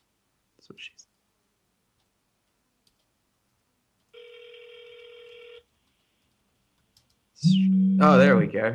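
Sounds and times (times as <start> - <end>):
faint hiss: 0.0 - 8.7
speech: 0.6 - 1.1, 7.4 - 8.7
iPhone ringing tone while placing an outgoing call: 4.2 - 5.7.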